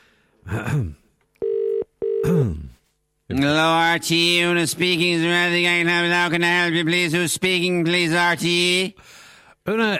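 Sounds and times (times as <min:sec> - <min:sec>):
speech: 0:00.5 - 0:01.0, 0:03.4 - 0:09.9
telephone ringback tone double ring: 0:01.4 - 0:02.2.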